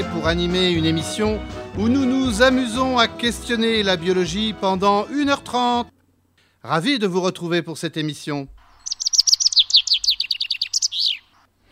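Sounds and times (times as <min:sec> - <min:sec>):
speech: 0:00.2 - 0:06.0, 0:06.6 - 0:08.6
chaffinch singing: 0:08.7 - 0:11.5.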